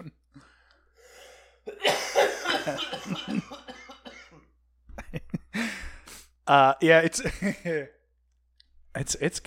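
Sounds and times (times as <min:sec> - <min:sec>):
heavy harsh coughing after smoking: 0:01.6 - 0:04.5
speech: 0:02.6 - 0:03.8, 0:06.5 - 0:08.0, 0:09.0 - 0:09.4.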